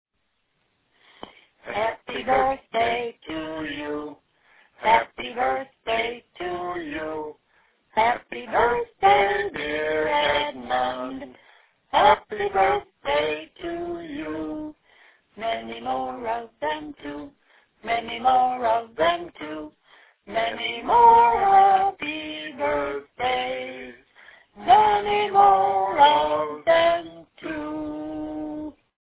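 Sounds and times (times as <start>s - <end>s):
mom and dad singing: 1.6s - 28.8s.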